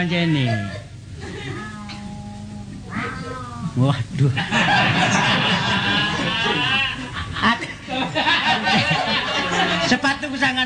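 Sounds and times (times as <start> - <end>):
speech: 0.0 - 0.9, 3.0 - 9.0
steady noise: 0.0 - 10.6
cat meowing: 0.4 - 3.8
laughter: 4.4 - 10.0.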